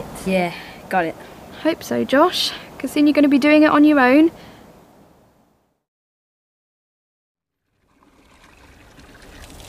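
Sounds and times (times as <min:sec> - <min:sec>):
speech: 0:00.2 - 0:04.5
water gushing from a drinking water tap: 0:07.6 - 0:09.6.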